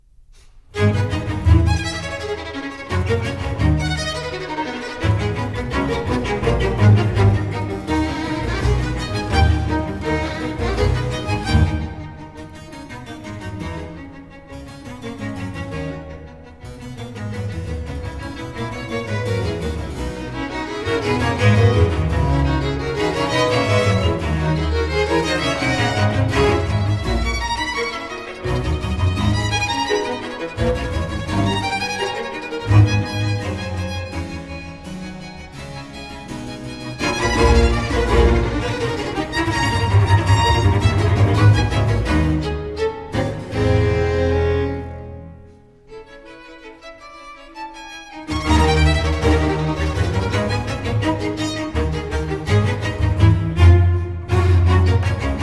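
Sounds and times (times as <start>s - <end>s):
cello: 0.4s - 55.4s
strings and basso continuo: 0.6s - 55.4s.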